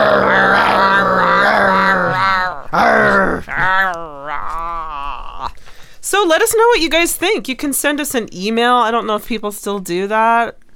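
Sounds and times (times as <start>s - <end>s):
people growling as a sign-off: 0.0s - 5.6s
speech: 6.2s - 10.6s.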